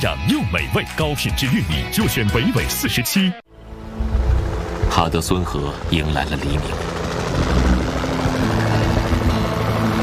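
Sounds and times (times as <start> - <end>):
speech: 0.0 - 3.4, 4.9 - 8.0
helicopter rotor and engine patrolling above a bald eagle nest: 3.6 - 10.0.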